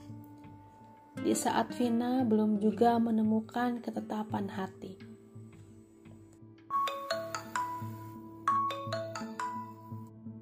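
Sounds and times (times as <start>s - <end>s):
speech: 1.2s - 5.1s
mobile phone notification jingle of bell-like notes: 6.7s - 10.1s.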